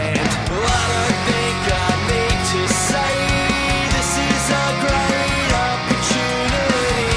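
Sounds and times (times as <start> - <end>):
punk rock chorus with octave lead guitar line: 0.0 - 7.1.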